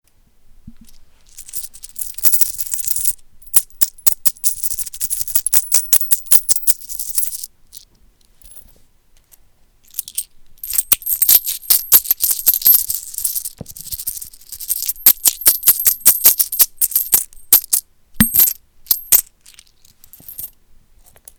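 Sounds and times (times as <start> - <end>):
English coins jingling: 1.3 - 7.5, 9.9 - 20.5.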